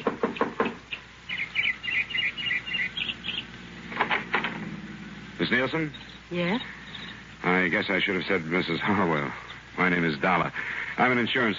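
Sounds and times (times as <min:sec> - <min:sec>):
knocking on the door of a small house: 0:00.0 - 0:00.8
birds chirping outside: 0:00.0 - 0:11.5
speech: 0:05.4 - 0:06.8, 0:07.4 - 0:11.5.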